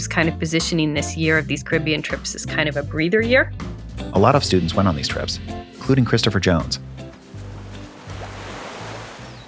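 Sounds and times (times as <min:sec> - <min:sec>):
speech: 0:00.0 - 0:07.0
ocean surf roaring: 0:05.8 - 0:09.4.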